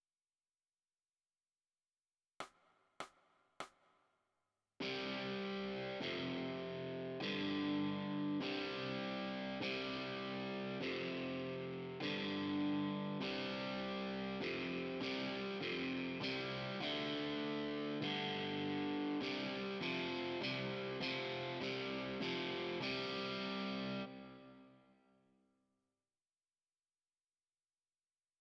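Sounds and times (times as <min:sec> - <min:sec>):
overdriven electric guitar: 0:04.8 - 0:24.8.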